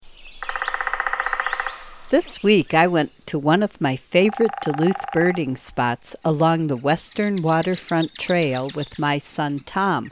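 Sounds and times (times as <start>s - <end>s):
background hiss: 0.0s - 10.1s
hairy woodpecker rattle call: 0.2s - 5.8s, 7.0s - 9.4s
speech: 2.1s - 10.1s.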